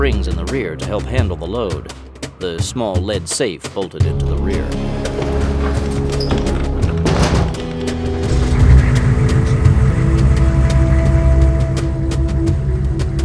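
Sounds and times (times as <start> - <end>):
speech: 0.0 - 6.3
car engine rumbling as the car moves along the road: 5.5 - 13.2.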